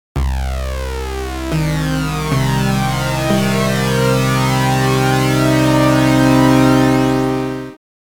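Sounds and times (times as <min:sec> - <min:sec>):
comb resonator effect: 0:00.2 - 0:07.7.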